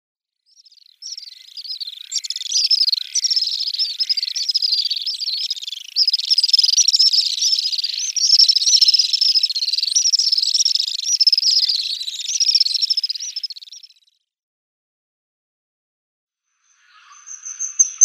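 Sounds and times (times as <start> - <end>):
little swift calling: 1.0 - 13.9.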